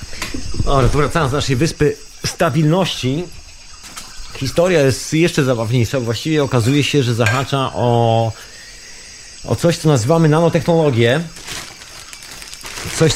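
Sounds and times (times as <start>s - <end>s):
speech: 0.7s - 3.4s, 4.4s - 8.5s, 9.4s - 11.5s, 13.0s - 13.1s
rummaging through plastic shopping bags: 10.5s - 13.1s.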